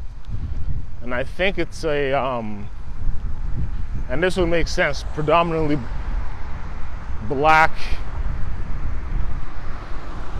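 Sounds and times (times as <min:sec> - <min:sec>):
speech: 0:01.1 - 0:02.8, 0:04.1 - 0:06.0, 0:07.3 - 0:08.0
truck passing outside: 0:02.7 - 0:10.3.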